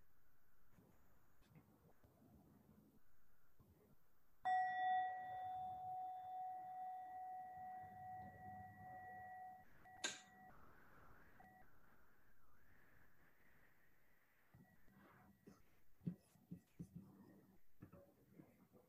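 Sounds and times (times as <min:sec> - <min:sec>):
meditation bell struck and ringing: 0:04.5 - 0:10.6.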